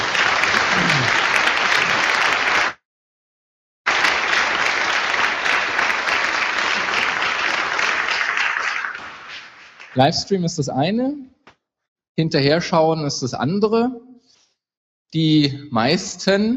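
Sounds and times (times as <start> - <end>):
audience applause at a livestreamed event: 0.0 - 2.8, 3.9 - 10.4
speech: 10.0 - 11.3, 12.2 - 14.1, 15.1 - 16.5.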